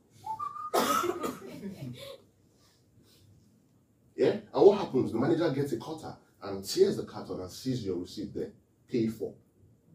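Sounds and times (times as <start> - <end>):
person whistling imitating a store alarm: 0.2 - 0.8
speech: 4.9 - 9.4.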